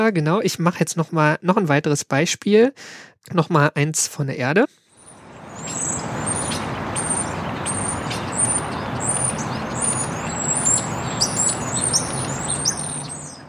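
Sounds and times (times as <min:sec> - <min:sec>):
speech: 0:00.0 - 0:04.8
non-native birds chirping and trilling: 0:04.9 - 0:13.4.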